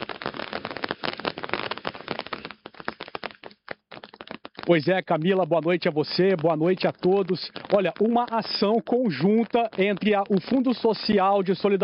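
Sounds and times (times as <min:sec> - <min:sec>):
rain pattering on a hard surface: 0:00.0 - 0:11.8
speech: 0:04.7 - 0:11.8.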